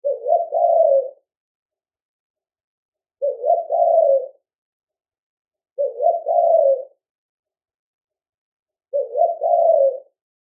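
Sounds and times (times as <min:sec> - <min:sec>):
spotted dove cooing in Australia: 0:00.0 - 0:01.2, 0:03.2 - 0:04.4, 0:05.8 - 0:07.0, 0:08.9 - 0:10.2.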